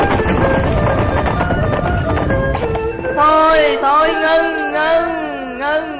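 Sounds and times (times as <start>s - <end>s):
long dense string of firecrackers popping and crackling: 0.0s - 4.3s
music: 0.0s - 5.9s.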